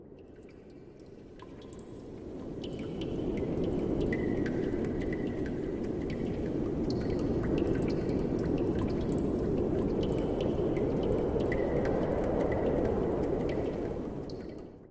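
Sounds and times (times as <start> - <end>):
water drops dripping in mines: 0.3 - 14.7.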